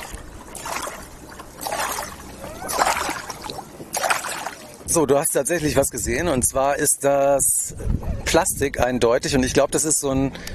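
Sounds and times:
kayak paddle strokes splashing and dripping on water: 0.0 - 4.9
speech: 5.0 - 10.5.

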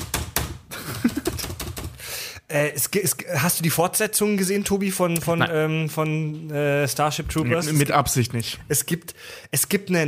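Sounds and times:
typing on a keyboard: 1.1 - 2.0
speech: 2.5 - 10.0.

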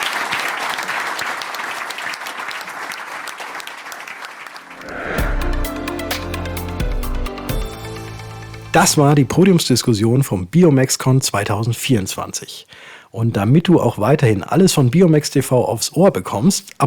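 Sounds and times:
room full of people clapping: 0.0 - 5.7
upbeat music with a strong bass line: 5.0 - 9.3
speech: 8.8 - 16.8.

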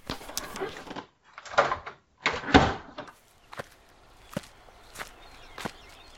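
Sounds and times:
apartment door opening and closing with heavy thuds: 0.0 - 3.2
brisk footsteps walking: 3.1 - 6.1.

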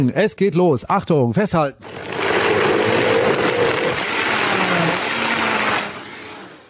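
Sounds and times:
speech: 0.0 - 2.2
powerful high-performance blender running with grinding and churning: 1.8 - 6.6.

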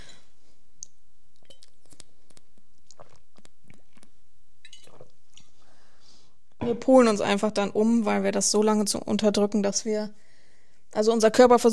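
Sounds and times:
person sipping a drink: 1.3 - 6.3
speech: 6.7 - 10.2, 11.0 - 11.7.

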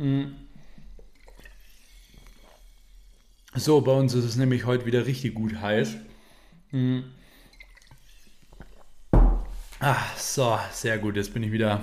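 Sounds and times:
speech: 0.0 - 0.4, 3.6 - 6.1, 6.7 - 7.2, 9.8 - 11.8
faint slurping and swallowing of water in a home office: 0.4 - 3.6, 7.3 - 9.1.

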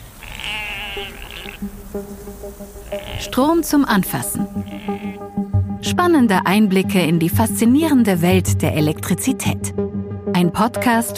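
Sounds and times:
sheep and goats bleating: 0.0 - 1.8, 2.8 - 3.6, 4.5 - 5.4
speech: 1.0 - 11.1.

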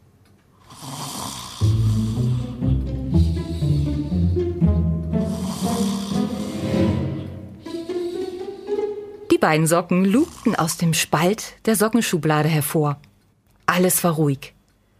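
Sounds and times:
person snoring: 0.6 - 9.3, 10.0 - 10.9
speech: 9.4 - 13.1, 13.7 - 14.6.

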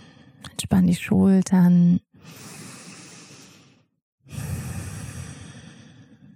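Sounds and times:
deep breaths in and out during a guided relaxation exercise: 0.0 - 0.4, 2.1 - 6.3
speech: 0.7 - 2.6.

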